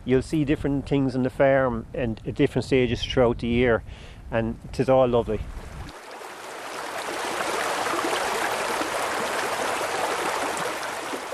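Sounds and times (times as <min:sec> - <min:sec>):
speech: 0:00.0 - 0:05.7
stream flowing: 0:05.6 - 0:11.3.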